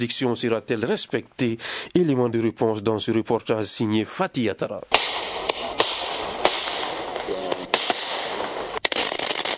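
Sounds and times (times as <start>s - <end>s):
speech: 0.0s - 5.5s
steady busy outdoor hiss: 0.0s - 9.5s
firecrackers exploding during end-of-year celebrations in Mali: 4.9s - 9.5s.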